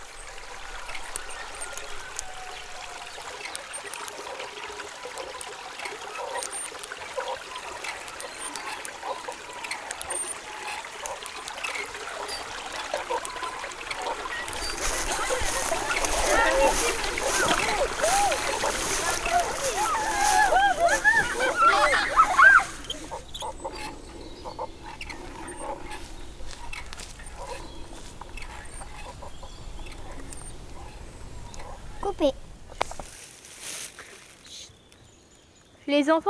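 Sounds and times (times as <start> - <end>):
water streaming and trickling around a boat: 0.0 - 33.2
laughter: 14.0 - 33.0.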